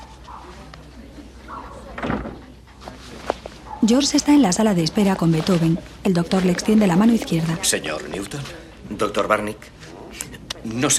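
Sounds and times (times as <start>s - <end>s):
door thudding shut: 1.9s - 2.4s
speech: 3.8s - 9.8s, 10.6s - 10.9s.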